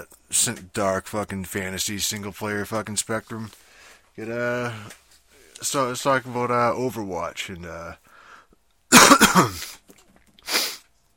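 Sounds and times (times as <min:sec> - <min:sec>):
speech: 0:00.3 - 0:03.6, 0:04.2 - 0:05.0, 0:05.6 - 0:08.0, 0:08.9 - 0:09.8
person coughing up water: 0:08.9 - 0:09.8.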